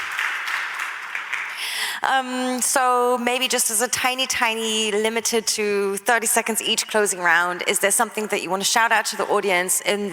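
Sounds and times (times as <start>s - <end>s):
audience applause at the close of a panel discussion: 0.0s - 2.0s
speech: 2.0s - 10.1s.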